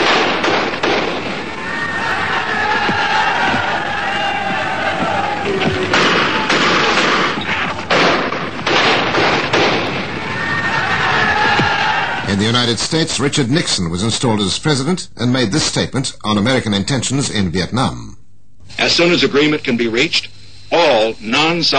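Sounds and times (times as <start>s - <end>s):
gunfire during street fighting in Ireland: 0.0s - 1.5s, 5.9s - 10.1s
large agitated crowd roaring: 1.2s - 7.9s, 9.8s - 12.3s
people shouting: 1.4s - 7.8s, 10.1s - 12.3s
speech: 12.7s - 21.7s.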